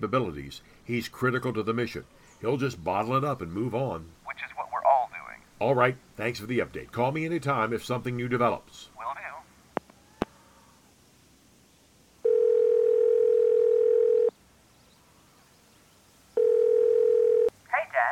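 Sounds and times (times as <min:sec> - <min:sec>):
speech: 0:00.0 - 0:04.6, 0:05.6 - 0:09.3
telephone dial tone after hanging up: 0:12.2 - 0:14.3, 0:16.4 - 0:17.5.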